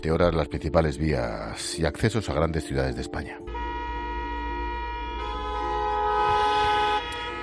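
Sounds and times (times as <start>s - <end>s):
speech: 0.0s - 3.6s
car horns honking in a traffic jam on the road into Murcia: 3.5s - 7.4s.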